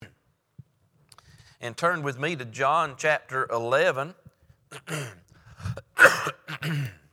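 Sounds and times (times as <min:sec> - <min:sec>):
speech: 0:01.6 - 0:04.2
person clearing throat: 0:04.8 - 0:07.0
person coughing: 0:04.8 - 0:07.0.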